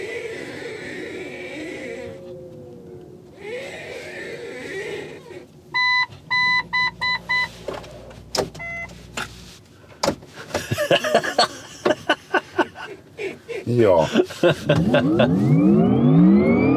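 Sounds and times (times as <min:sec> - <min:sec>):
car steering wheel whirring and groaning in a car dealership's yard: 0:00.0 - 0:09.6
short electronic beeps: 0:05.8 - 0:07.6, 0:08.6 - 0:08.9
laughter: 0:10.6 - 0:15.5
speech: 0:13.8 - 0:16.6.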